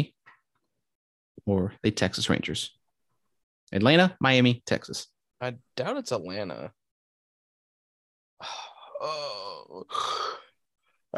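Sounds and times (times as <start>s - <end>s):
speech: 1.5s - 2.8s, 3.7s - 6.8s, 8.4s - 10.4s
person yawning: 8.4s - 10.5s.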